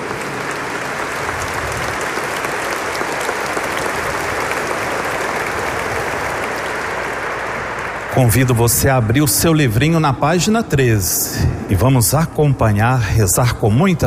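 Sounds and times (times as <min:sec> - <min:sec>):
large audience applauding in welcome: 0:00.0 - 0:10.6
speech: 0:08.2 - 0:14.0.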